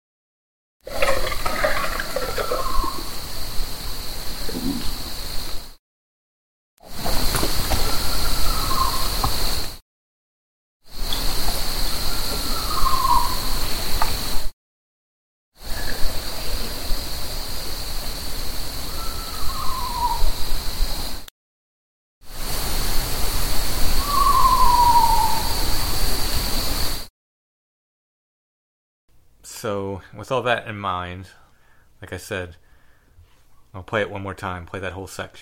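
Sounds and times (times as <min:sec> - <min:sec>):
steady hissing noise: 0:00.9 - 0:05.8, 0:06.8 - 0:09.8, 0:10.9 - 0:14.5, 0:15.6 - 0:21.3, 0:22.3 - 0:27.1
owl hooting: 0:02.2 - 0:03.1, 0:07.8 - 0:09.7, 0:12.0 - 0:13.6, 0:18.9 - 0:20.4, 0:24.0 - 0:25.7
speech: 0:29.6 - 0:31.4, 0:32.0 - 0:32.6, 0:33.8 - 0:35.4.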